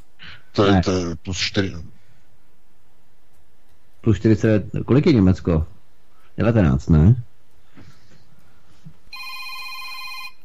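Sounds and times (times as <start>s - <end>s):
speech: 0.6s - 2.0s, 4.0s - 5.8s, 6.4s - 7.3s
telephone ringing with an incoming call to a radio call-in broadcast: 9.1s - 10.4s.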